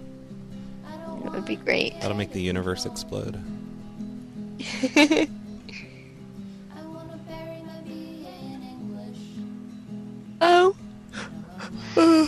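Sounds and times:
speech: 1.3s - 3.6s, 4.6s - 5.9s
laughter: 4.6s - 5.3s
person yawning: 11.2s - 12.2s.

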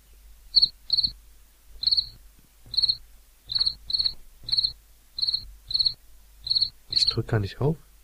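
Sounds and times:
faint low hum: 0.0s - 8.0s
cricket chirping sound effect: 0.5s - 1.2s, 1.8s - 7.2s
speech: 7.2s - 7.9s.

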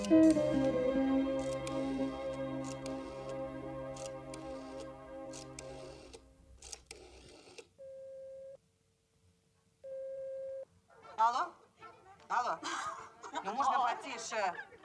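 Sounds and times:
music: 0.0s - 6.2s, 10.9s - 14.2s
telephone line tone beeps on a handset: 9.8s - 10.6s
light laughter: 12.1s - 14.8s.

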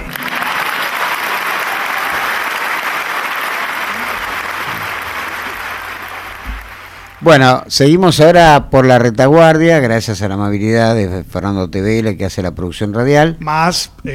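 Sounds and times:
applause for an interviewee: 0.0s - 7.4s
speech: 7.2s - 14.1s.

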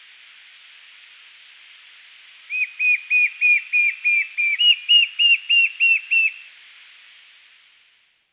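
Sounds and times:
White-shouldered fire-eye Pyriglena leucoptera singing short arched whistles: 2.5s - 6.5s.

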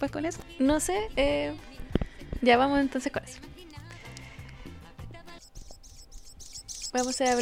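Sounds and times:
speech: 0.0s - 1.8s, 2.4s - 3.6s, 6.9s - 7.4s
small bird chirping outside: 5.3s - 7.4s.

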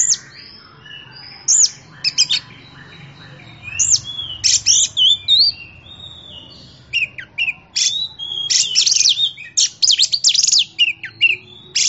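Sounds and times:
Oriental magpie-robin singing: 0.0s - 11.8s.

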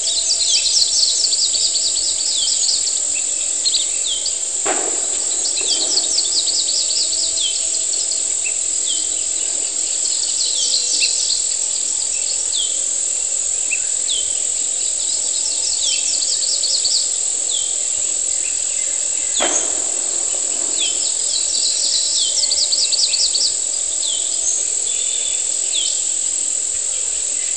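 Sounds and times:
cicada song as high buzzing tone on humid morning: 0.0s - 27.5s
sharp bang of rockets: 3.7s - 10.3s, 19.2s - 22.9s.

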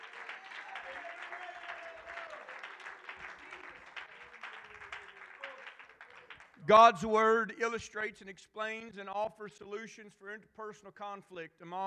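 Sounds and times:
congregation clapping hands at a church service: 0.0s - 8.0s
speech: 6.7s - 11.8s.

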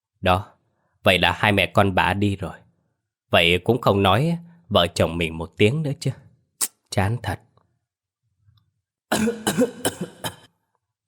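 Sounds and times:
speech: 0.2s - 2.6s, 3.3s - 6.2s, 6.9s - 7.5s, 9.1s - 10.4s
elderly woman giving a dry, hacking cough in a small, narrow room: 9.1s - 10.6s.

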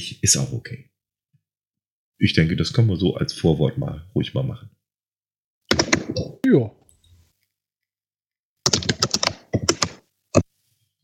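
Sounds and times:
speech: 0.0s - 0.9s, 2.2s - 4.8s, 6.1s - 6.8s
loud computer keyboard typing: 5.7s - 6.3s, 8.6s - 10.5s.

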